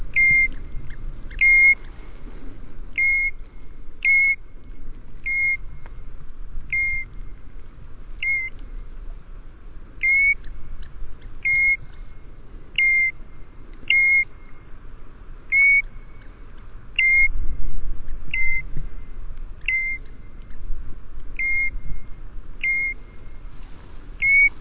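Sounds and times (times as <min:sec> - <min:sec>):
steady low background noise: 0:00.0 - 0:24.6
European golden plover calling with mournful single-note whistles: 0:00.1 - 0:02.0, 0:03.0 - 0:03.4, 0:04.0 - 0:04.4, 0:05.2 - 0:05.8, 0:06.7 - 0:07.2, 0:08.2 - 0:08.6, 0:10.0 - 0:10.6, 0:11.4 - 0:12.0, 0:12.7 - 0:13.2, 0:13.9 - 0:14.6, 0:15.5 - 0:16.2, 0:17.0 - 0:17.4, 0:18.3 - 0:18.7, 0:19.6 - 0:20.2, 0:21.4 - 0:21.9, 0:22.6 - 0:24.6.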